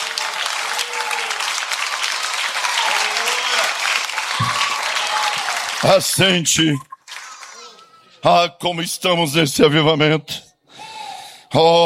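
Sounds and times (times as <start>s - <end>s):
audience applauding: 0.0s - 8.0s
speech: 5.8s - 6.9s, 8.2s - 10.5s, 11.5s - 11.8s.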